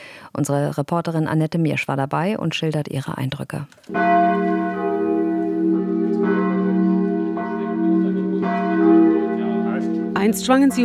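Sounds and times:
speech: 0.4 - 4.6, 10.2 - 10.8
church bells ringing from wooden frame: 3.9 - 10.8.

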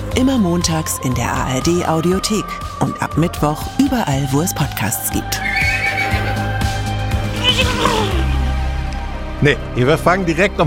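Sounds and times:
speech: 0.1 - 5.7, 7.5 - 8.3, 9.4 - 10.6
horse whinnying: 5.4 - 8.5.

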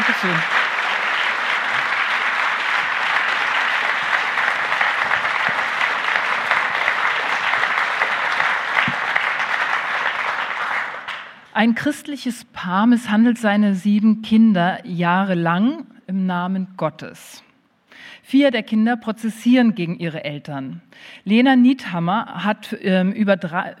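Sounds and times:
audience applause: 0.0 - 11.4
speech: 0.2 - 0.6, 11.6 - 17.4, 18.3 - 23.7.

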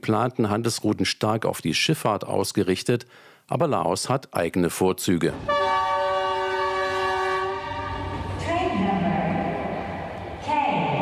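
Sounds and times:
speech: 0.0 - 5.8
high-speed train rumbling rail noise: 5.3 - 11.0
station ambience in Vientiane: 5.3 - 11.0
high-speed train horn in a station hall in Vientiane: 5.4 - 8.5
indistinct voices in a station hall: 8.3 - 11.0.

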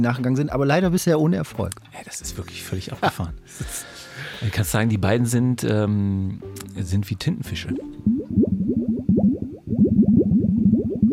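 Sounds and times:
speech: 0.0 - 8.2
water bubbling: 7.7 - 11.1.

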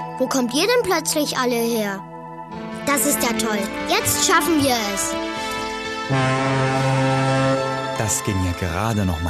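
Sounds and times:
speech: 0.2 - 5.5, 6.1 - 6.4, 8.1 - 9.2
ship's horn blowing: 5.3 - 8.3.

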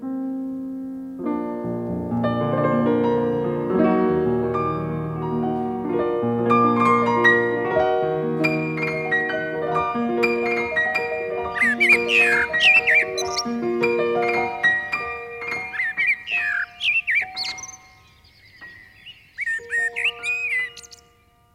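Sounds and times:
steady sustained musical tones stepping up and down: 1.8 - 21.5
several birds chirping and trilling on a spring morning: 8.4 - 21.5.

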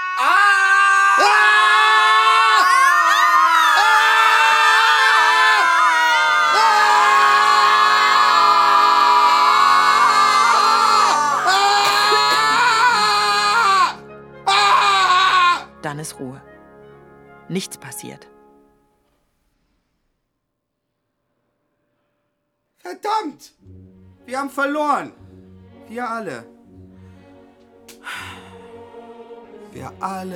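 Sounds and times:
group of people screaming together on command: 0.0 - 15.7
speech: 16.0 - 16.6, 17.5 - 18.3, 24.3 - 25.2, 25.9 - 26.5, 29.8 - 30.3.

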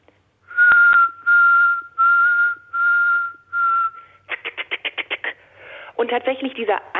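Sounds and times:
person whistling an imitation of a nightingale's song: 0.5 - 5.1
speech: 6.0 - 6.9.

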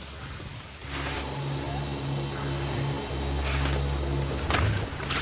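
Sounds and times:
electric drive of a modern fully electronic gondola lift humming: 1.2 - 5.0.

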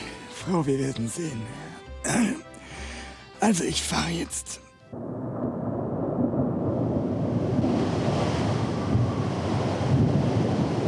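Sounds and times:
speech: 0.5 - 2.5, 3.4 - 5.3
gusting wind rumbling and buffeting: 4.9 - 10.8
rough stormy sea surf churning: 6.3 - 10.8.

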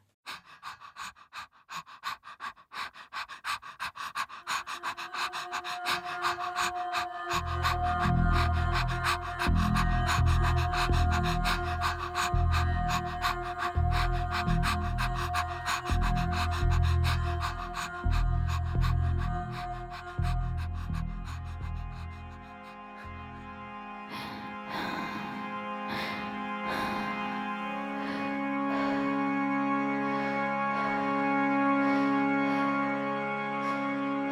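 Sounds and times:
rhythmic heavy breathing and panting: 0.0 - 34.3
droning film musical score: 2.0 - 34.3
pulsing low bass: 5.1 - 24.0.

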